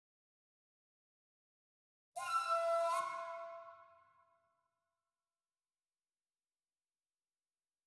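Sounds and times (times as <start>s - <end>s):
flute effects: 2.2s - 4.0s.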